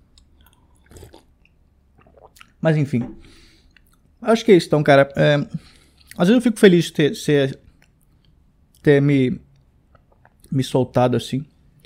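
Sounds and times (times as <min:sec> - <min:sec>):
crunchy chewing of a cookie: 0:00.1 - 0:02.5
speech: 0:02.6 - 0:03.4, 0:04.2 - 0:07.6, 0:08.8 - 0:09.4, 0:10.5 - 0:11.5.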